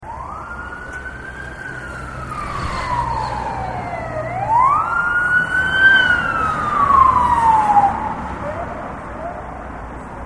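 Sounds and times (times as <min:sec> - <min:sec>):
police car siren: 0:00.0 - 0:09.9
police car arriving on street: 0:00.0 - 0:10.2.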